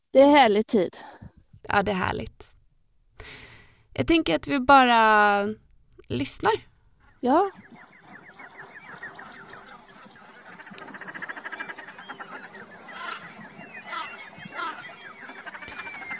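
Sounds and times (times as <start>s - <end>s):
speech: 0.1s - 2.5s, 4.0s - 7.7s
male common shelduck spring courtship calls at Marstrand: 6.2s - 16.1s.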